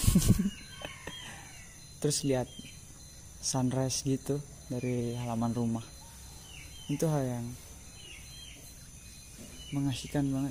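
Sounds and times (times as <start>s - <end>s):
roosters crowing in the early morning: 0.0s - 2.5s, 5.8s - 9.8s
speech: 0.2s - 0.6s, 2.0s - 2.7s, 3.4s - 6.0s, 6.9s - 7.6s, 9.7s - 10.4s.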